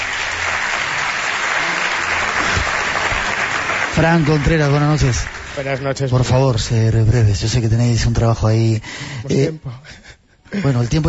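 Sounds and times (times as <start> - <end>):
audience applause: 0.0 - 6.2
speech: 4.0 - 11.0.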